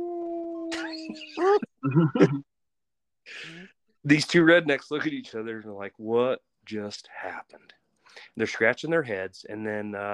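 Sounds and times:
person imitating a dog howling: 0.0 - 2.3
speech: 1.1 - 2.5, 3.3 - 10.1.

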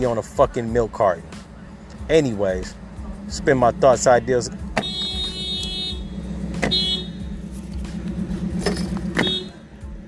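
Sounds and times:
speech: 0.0 - 1.4, 2.1 - 4.6
car engine rumbling: 0.0 - 10.0
brief sharp rattles of a passing vehicle: 7.4 - 9.2.

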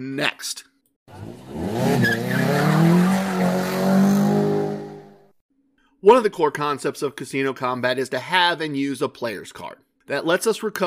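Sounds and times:
speech: 0.0 - 1.3, 6.1 - 10.8
car tires spinning and squealing: 1.1 - 5.1.

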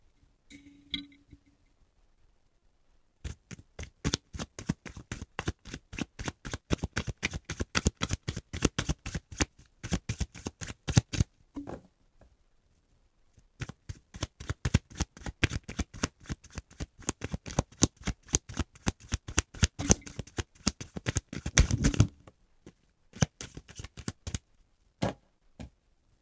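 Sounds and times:
tarot cards shuffled at the microphone: 3.3 - 11.3, 13.6 - 22.1, 23.2 - 24.4.

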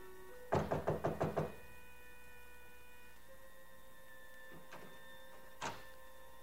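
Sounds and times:
firm crisp knocking on a hotel suite door: 0.5 - 1.6.

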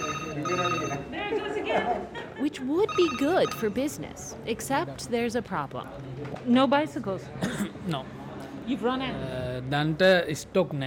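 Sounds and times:
telephone ringing with a warbling electronic tone: 0.0 - 1.1, 2.8 - 4.0
speech: 1.7 - 10.8.

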